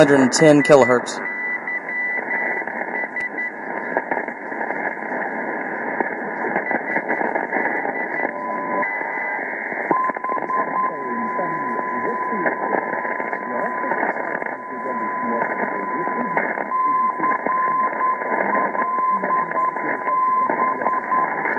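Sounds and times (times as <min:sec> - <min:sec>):
speech: 0:00.0 - 0:01.3
longwave aviation beacon Morse keyed tone: 0:00.0 - 0:02.2
dense band-limited radio receiver noise: 0:00.0 - 0:21.5
garbled broadcast chatter: 0:00.0 - 0:21.5.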